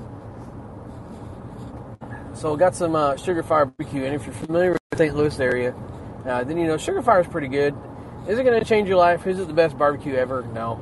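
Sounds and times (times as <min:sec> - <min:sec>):
pencil scribbling on paper: 0:00.8 - 0:01.9
speech: 0:02.4 - 0:10.7.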